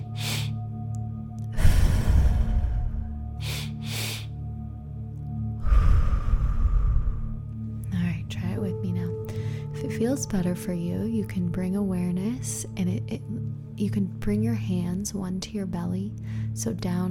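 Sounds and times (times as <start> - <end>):
two-part inhale through belly and chest in breathwork: 0.0 - 4.6, 5.5 - 7.7, 9.3 - 9.8, 16.2 - 16.6
low steady hum: 0.0 - 17.0
speech: 10.0 - 17.0.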